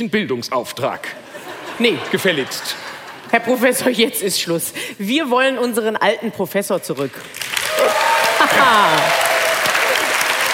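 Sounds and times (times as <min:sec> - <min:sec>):
speech: 0:00.0 - 0:07.9, 0:08.5 - 0:09.2
laughter: 0:01.2 - 0:03.4, 0:08.0 - 0:09.2
audience clapping: 0:07.0 - 0:10.5.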